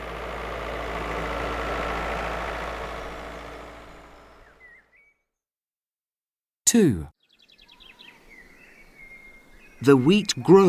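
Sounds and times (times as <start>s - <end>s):
tractor engine chugging: 0.0s - 4.6s, 9.8s - 10.6s
speech: 6.7s - 7.2s, 9.8s - 10.6s
faint bird chirps: 7.2s - 10.5s.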